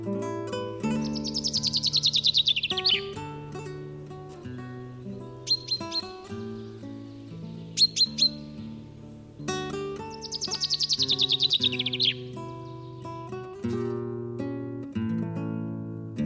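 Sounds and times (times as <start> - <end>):
instrumental music bed: 0.0 - 16.2
common chaffinch song trills: 0.6 - 13.4.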